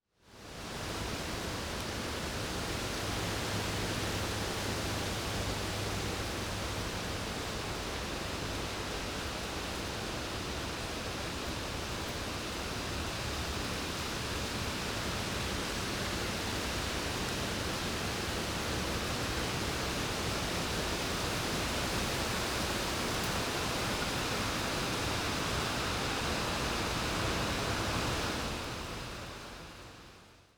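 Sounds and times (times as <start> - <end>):
strong wind in a forest: 0.2 - 30.5.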